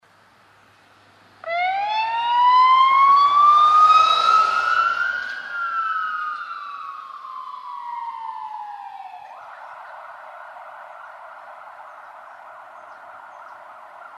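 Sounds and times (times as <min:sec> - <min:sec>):
ambulance siren: 0:01.4 - 0:14.1.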